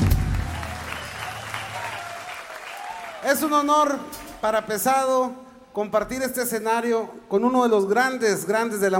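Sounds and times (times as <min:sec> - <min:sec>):
audience applause bidding farewell to a performer: 0:00.0 - 0:03.9
speech: 0:03.2 - 0:08.9.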